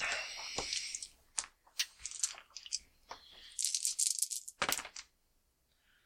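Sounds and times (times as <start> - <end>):
dice rolled across a hard surface: 0.4 - 5.1.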